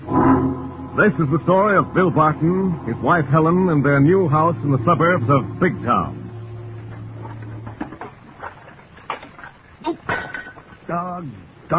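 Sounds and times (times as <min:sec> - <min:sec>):
low steady hum: 0:00.0 - 0:11.7
speech: 0:01.0 - 0:06.2, 0:10.9 - 0:11.7
dishes clinking and clattering while being washed: 0:07.2 - 0:10.8.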